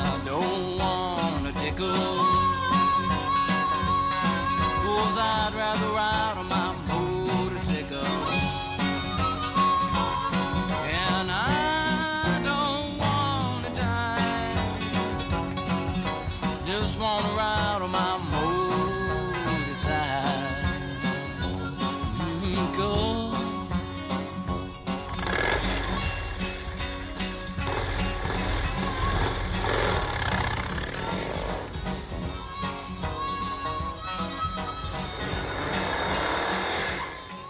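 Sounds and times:
dense strummed accompaniment: 0.0s - 37.4s
folk song about riding a motorcycle: 0.0s - 37.4s
swooping engine-like revving sounds: 24.8s - 32.2s, 35.2s - 37.3s.

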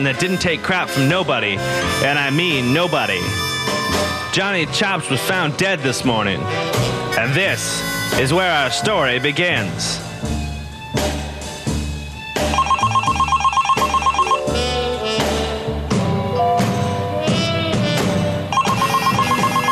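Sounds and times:
speech: 0.0s - 10.3s
dense busy music: 0.0s - 19.7s
telephone ringing in rapid trilling bursts: 12.5s - 14.6s, 18.5s - 19.7s.

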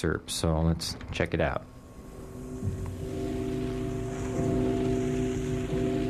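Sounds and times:
speech: 0.0s - 1.8s, 4.4s - 4.7s
33-ton church bell cast in 1688 by a Rostov craftsman ringing: 3.0s - 6.0s.

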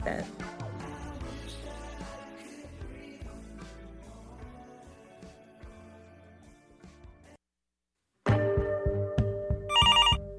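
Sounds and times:
speech: 0.0s - 0.5s
music: 0.0s - 7.4s, 8.2s - 10.3s
telephone ringing with a bright trilling electronic tone: 9.7s - 10.3s.

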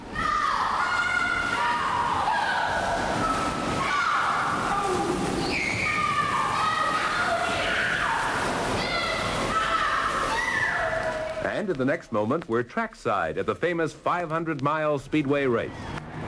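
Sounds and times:
people shouting and calling at an indoor swimming pool: 0.0s - 11.5s
water splashing and sloshing in an indoor swimming pool: 0.0s - 16.2s
speech: 11.7s - 15.9s.

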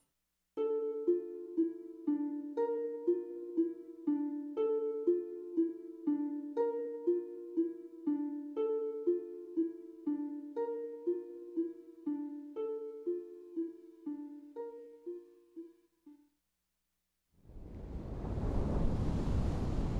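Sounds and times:
short melodic tune of plucked-sounding notes: 0.6s - 16.3s
ocean waves: 17.5s - 19.9s.

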